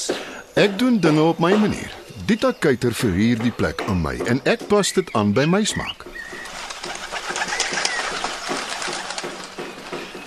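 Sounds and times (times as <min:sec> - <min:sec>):
speech: 0:00.6 - 0:06.2
pigeons cooing: 0:05.7 - 0:10.2.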